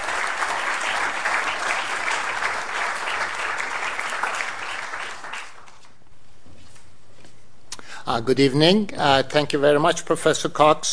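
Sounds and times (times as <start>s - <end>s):
large audience applauding: 0.0s - 5.7s
speech: 8.1s - 10.9s.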